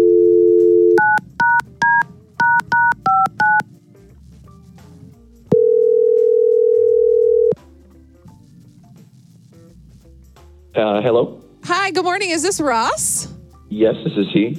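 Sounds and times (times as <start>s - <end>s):
telephone dial tone: 0.0s - 3.6s, 5.5s - 7.6s
speech: 10.8s - 11.3s, 11.9s - 14.5s.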